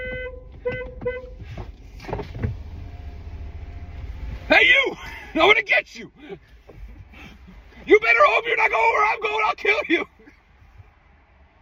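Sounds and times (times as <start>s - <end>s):
car horn honks: 0.0s - 1.6s
low engine rumble: 0.0s - 11.5s
speech: 5.3s - 6.5s, 8.0s - 10.1s.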